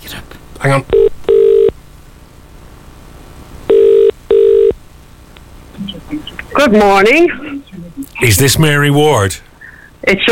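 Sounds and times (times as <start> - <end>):
faint hiss: 0.0 - 10.3
speech: 0.6 - 1.2, 6.6 - 7.4, 8.2 - 10.3
telephone ringing tones on the line: 0.9 - 1.7, 3.7 - 4.8.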